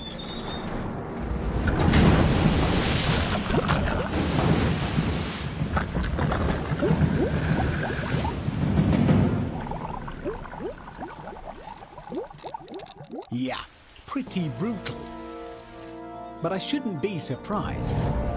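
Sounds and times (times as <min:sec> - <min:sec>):
water splashing and trickling as it drains away: 0:01.7 - 0:16.0
about 4 tons of water dropped from a bucket crashing onto a car: 0:01.8 - 0:11.0
speech: 0:14.2 - 0:15.0, 0:16.4 - 0:18.3.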